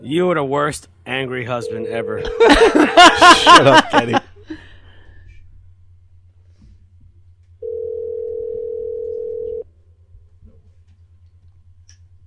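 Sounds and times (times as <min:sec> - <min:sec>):
speech: 0:00.0 - 0:04.6
low rumble: 0:00.0 - 0:12.2
laughter: 0:02.2 - 0:04.3
faint breathing: 0:04.4 - 0:05.5
telephone dial tone: 0:07.6 - 0:09.6.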